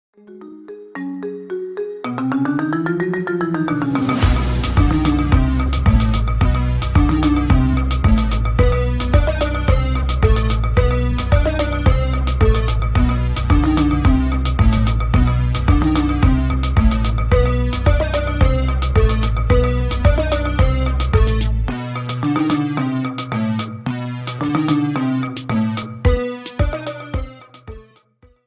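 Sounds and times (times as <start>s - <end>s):
marimba ringtone remix: 0.2s - 6.3s, 7.0s - 21.4s, 22.0s - 23.8s, 24.4s - 27.4s.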